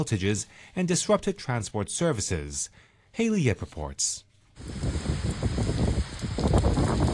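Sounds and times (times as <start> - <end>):
speech: 0.0 - 5.1
gusty wind buffeting the microphone: 4.6 - 7.1
heavy torrential rain pouring down: 4.6 - 7.1.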